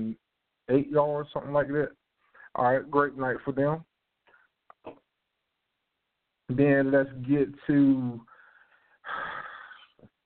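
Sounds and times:
speech: 0.1 - 3.9, 6.5 - 8.3
man breathing heavily: 8.3 - 10.0.

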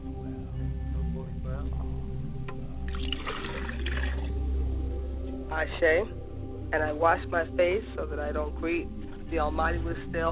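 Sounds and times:
low steady hum: 0.0 - 10.2
water poured out as a libation splashing onto the ground: 2.9 - 4.3
speech: 5.6 - 10.2.

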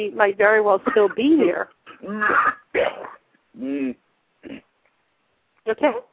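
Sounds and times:
speech: 0.0 - 4.6, 5.7 - 6.1
person coughing and clearing their throat: 0.8 - 1.3, 1.9 - 3.2.

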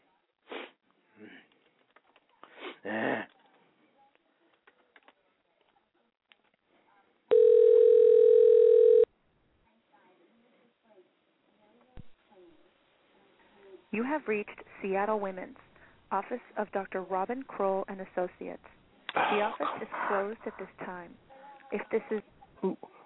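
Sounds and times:
electronic telephone tone after hang-up: 7.3 - 9.1
speech: 14.1 - 23.0.

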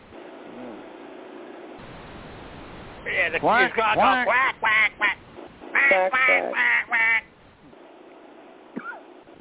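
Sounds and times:
steady hiss: 0.0 - 9.3
duck quacking: 3.6 - 7.3.

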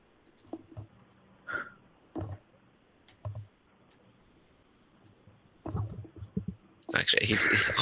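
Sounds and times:
typing on a computer keyboard: 0.2 - 1.3, 2.2 - 2.4, 3.1 - 6.6
speech: 7.0 - 7.8.

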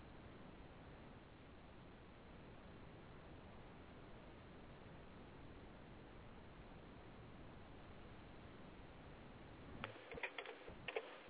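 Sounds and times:
low hiss: 0.0 - 11.2
typing on a computer keyboard: 9.8 - 11.2.

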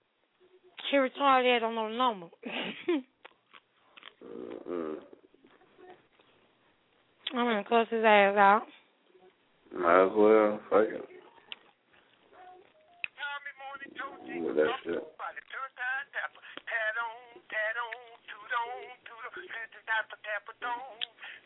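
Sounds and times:
speech: 0.9 - 3.1, 7.3 - 8.8, 9.7 - 11.1, 14.3 - 16.4
phone ringback tone over a narrow tinny line while calling a cell phone: 12.7 - 13.0
caller tune greet-me tone with voice-like melodic sounds: 12.7 - 21.1.

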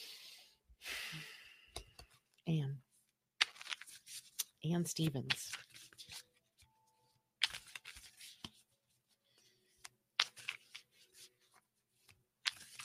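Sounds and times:
speech: 2.5 - 2.8, 4.6 - 5.6
oracle animal cards being shuffled for a card reading: 3.4 - 12.8.

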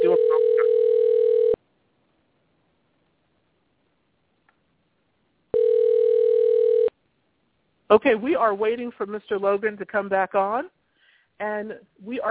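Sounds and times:
telephone line tone as a call is placed: 0.0 - 1.6, 5.5 - 6.9
speech: 7.9 - 10.8, 11.4 - 12.2.

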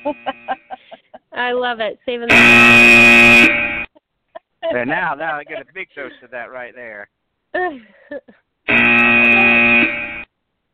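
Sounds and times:
speech: 0.0 - 0.3, 1.4 - 3.8, 4.7 - 8.4
electronic buzzer: 0.0 - 0.7, 2.3 - 3.9, 8.7 - 10.3
laughter: 0.0 - 1.4, 4.4 - 6.3.

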